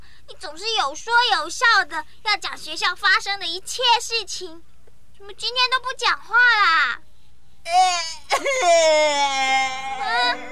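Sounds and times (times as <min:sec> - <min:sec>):
speech: 0:00.4 - 0:10.5
child crying in a high wailing voice: 0:07.7 - 0:10.5.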